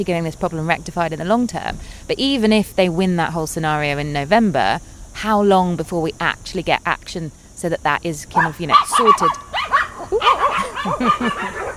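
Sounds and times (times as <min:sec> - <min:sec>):
speech: 0:00.0 - 0:09.5, 0:10.1 - 0:11.7
dogs barking and yipping: 0:08.4 - 0:11.7
laughter: 0:10.0 - 0:11.7.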